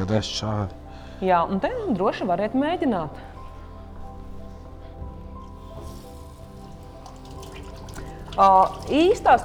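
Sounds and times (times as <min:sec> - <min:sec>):
speech: 0:00.0 - 0:03.3, 0:08.4 - 0:09.4
running tap water during surgical hand-washing: 0:05.4 - 0:09.4.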